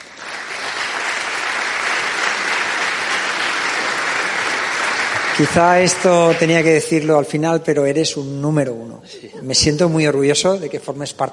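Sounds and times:
large audience applauding at an event in Madrid: 0:00.0 - 0:07.2
speech: 0:05.4 - 0:11.3.

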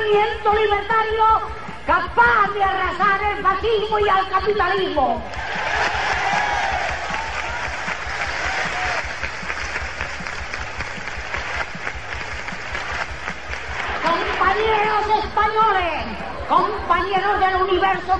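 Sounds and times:
speech: 0:00.1 - 0:06.0, 0:14.5 - 0:18.1
large crowd applauding a speaker: 0:05.3 - 0:15.1.

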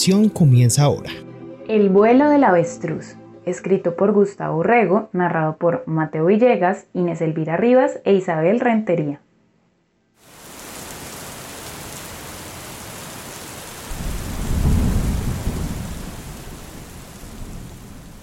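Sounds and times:
speech: 0:00.0 - 0:09.2
steady rain: 0:10.2 - 0:18.2
low rumble of thunder: 0:12.0 - 0:18.2.

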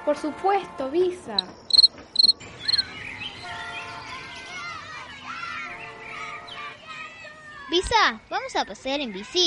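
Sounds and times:
speech: 0:00.0 - 0:01.6, 0:07.7 - 0:09.4
pet cricket chirping: 0:01.4 - 0:02.8.

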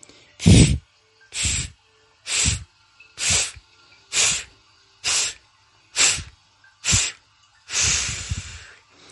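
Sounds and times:
forceful breath bursts through pursed lips in a breathing exercise: 0:00.4 - 0:00.8, 0:01.4 - 0:01.7, 0:02.3 - 0:02.6, 0:04.2 - 0:05.4, 0:06.0 - 0:08.8.

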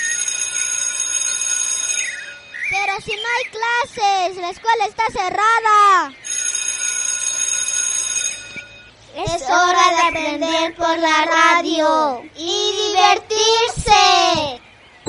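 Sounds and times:
electric school bell ringing: 0:00.0 - 0:02.9, 0:06.2 - 0:09.0
speech: 0:02.7 - 0:06.2, 0:09.2 - 0:14.6.

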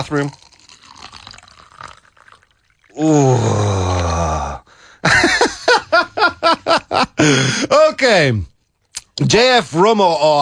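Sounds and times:
speech: 0:00.0 - 0:00.4, 0:03.0 - 0:03.7, 0:06.4 - 0:08.5, 0:09.2 - 0:10.3
water pouring into a glass: 0:00.0 - 0:03.4
drawn-out voice sound: 0:02.9 - 0:04.6.

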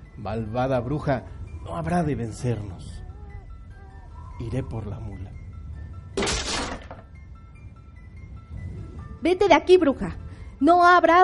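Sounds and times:
speech: 0:00.2 - 0:03.0, 0:04.4 - 0:05.4, 0:09.2 - 0:11.2
door being forced and splintering: 0:06.2 - 0:07.1.

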